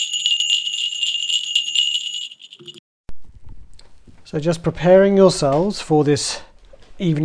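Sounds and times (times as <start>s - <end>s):
bright high-pitched bells ringing during meditation practice: 0.0s - 2.8s
speech: 4.3s - 7.2s.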